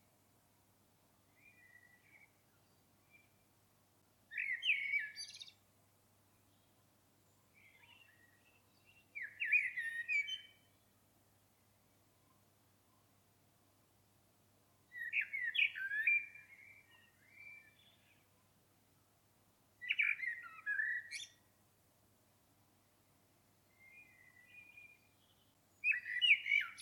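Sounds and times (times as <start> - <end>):
common blackbird Turdus merula singing warbled phrases: 4.3 - 5.6, 7.6 - 10.7, 14.9 - 18.2, 19.8 - 21.4, 23.7 - 26.8.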